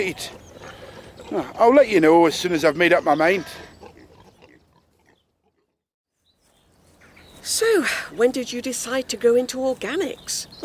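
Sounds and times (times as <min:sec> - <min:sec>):
speech: 0:00.0 - 0:00.4, 0:01.3 - 0:03.7, 0:07.4 - 0:10.6
pigs grunting and snorting: 0:00.0 - 0:05.8.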